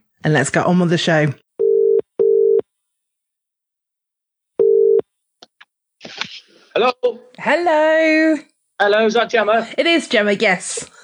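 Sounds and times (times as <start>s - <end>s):
speech: 0.2s - 1.4s, 6.8s - 11.0s
telephone ringback tone: 1.6s - 2.6s, 4.6s - 5.0s.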